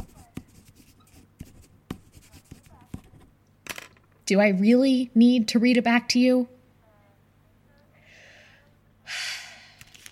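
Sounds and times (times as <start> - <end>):
pen writing on paper: 0.0 - 3.2
speech: 4.3 - 6.6.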